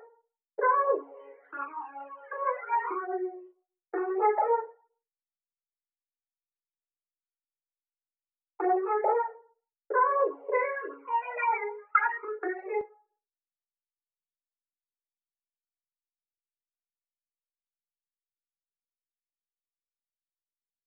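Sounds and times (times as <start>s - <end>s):
Afrobeats vocal melody in F sharp major: 0.6s - 4.5s, 9.9s - 12.9s.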